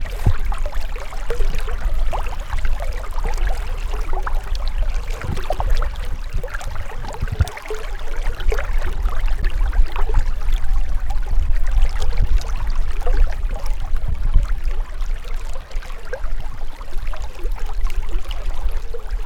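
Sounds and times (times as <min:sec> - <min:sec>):
water sounds on a beach: 0:00.0 - 0:19.2.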